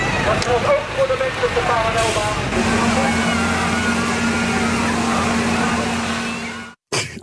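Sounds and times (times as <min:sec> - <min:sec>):
indistinct crowd voices: 0:00.0 - 0:06.8
low engine drone: 0:00.0 - 0:06.8
speech: 0:00.3 - 0:03.4
water cannon spray rushing at climate protest on highway: 0:02.0 - 0:06.8.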